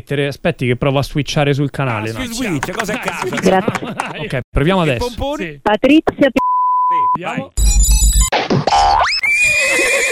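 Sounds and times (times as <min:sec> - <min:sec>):
speech: 0:00.0 - 0:10.1
laughter: 0:01.8 - 0:05.2
horse whinnying: 0:09.2 - 0:10.1.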